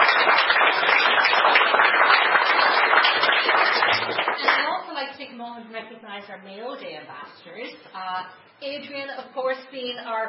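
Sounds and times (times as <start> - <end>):
audience round of applause at an event: 0.0 - 4.6
speech: 6.2 - 10.2.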